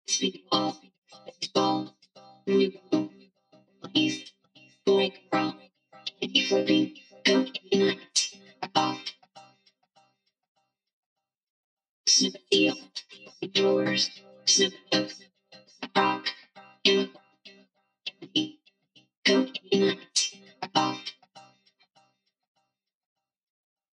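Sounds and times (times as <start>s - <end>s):
electronic a cappella vocals at 100 BPM in C minor: 0.0s - 1.9s, 3.8s - 4.3s, 4.9s - 9.1s, 12.2s - 15.2s, 15.8s - 17.1s, 19.3s - 21.1s.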